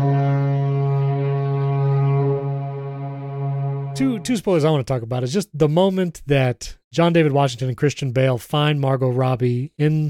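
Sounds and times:
foghorn blast: 0.0 - 4.4
speech: 4.0 - 10.0.

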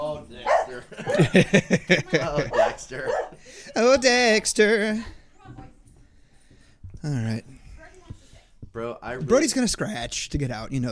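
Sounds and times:
speech: 0.2 - 5.6, 7.0 - 7.6, 8.8 - 10.9
dog barking in short sharp yaps: 0.4 - 0.9, 2.4 - 3.4
laughter: 0.7 - 3.8.

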